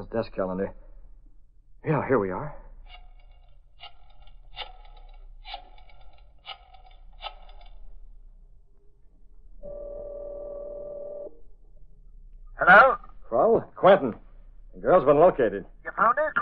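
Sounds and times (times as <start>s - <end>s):
speech: 0.0s - 0.9s, 1.8s - 3.0s, 13.8s - 14.2s, 14.8s - 16.3s
steady electronic tone from the telephone line: 9.6s - 11.4s.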